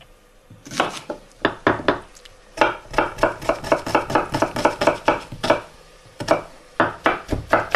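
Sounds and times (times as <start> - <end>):
knife chopping onions finely into small cubes on a board: 0.6 - 7.7.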